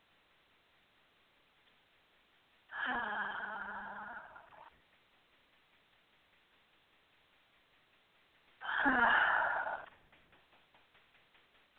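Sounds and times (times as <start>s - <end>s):
deep breath in a slow breathing exercise: 2.7s - 4.7s, 8.6s - 9.9s.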